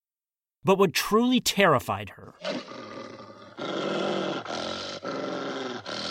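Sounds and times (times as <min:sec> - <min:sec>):
speech: 0:00.6 - 0:02.8
foxes snarling and growling: 0:02.4 - 0:06.1.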